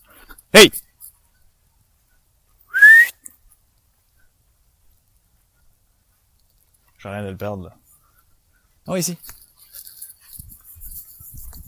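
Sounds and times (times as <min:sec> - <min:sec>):
speech: 0:00.6 - 0:00.8, 0:07.0 - 0:07.8, 0:08.8 - 0:09.4
sharp rising whistle to call a dog: 0:02.7 - 0:03.2.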